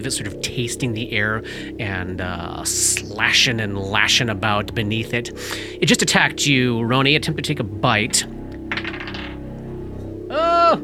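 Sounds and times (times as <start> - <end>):
speech: 0.0 - 8.4
faint steady low hum: 0.0 - 10.8
die rolling in a tabletop game: 8.7 - 9.4.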